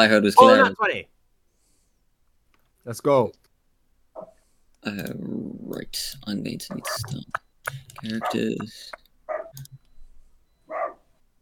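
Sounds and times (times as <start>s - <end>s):
speech: 0.0s - 1.2s, 2.8s - 3.4s, 4.2s - 9.8s
dog next door barking unhappily: 8.1s - 8.5s, 9.3s - 9.6s, 10.7s - 11.1s.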